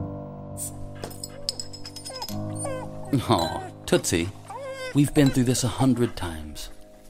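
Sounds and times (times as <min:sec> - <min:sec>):
dog whimpering at home: 0:01.2 - 0:06.5
speech: 0:03.1 - 0:06.8.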